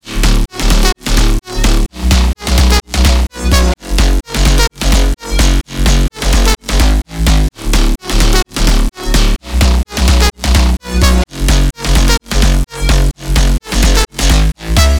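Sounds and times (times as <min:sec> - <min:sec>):
sidechained house music drop loop: 0:00.0 - 0:14.9.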